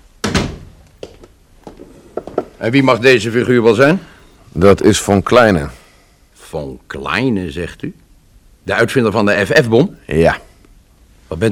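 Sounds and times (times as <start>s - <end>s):
door shutting behind someone entering: 0.2s - 0.8s
door clicking and knocking as it settles: 0.2s - 2.5s
speech: 2.6s - 5.8s, 6.5s - 8.0s, 8.6s - 10.5s.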